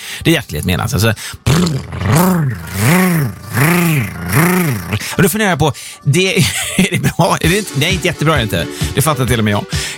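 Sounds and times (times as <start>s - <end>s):
speech: 0.2s - 9.9s
human voice imitating a lawnmower engine: 1.4s - 5.0s.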